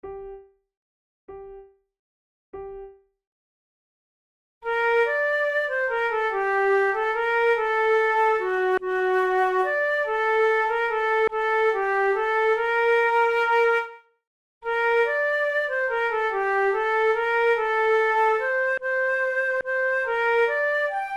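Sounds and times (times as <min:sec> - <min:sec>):
flute duet: 0:04.7 - 0:14.1, 0:14.7 - 0:21.1.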